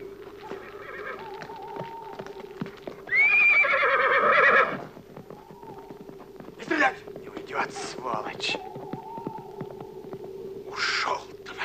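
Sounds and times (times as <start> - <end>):
galloping horse hoofbeats clattering: 0.0 - 11.6
horse neighing as it is ridden away at a gallop: 0.4 - 6.0.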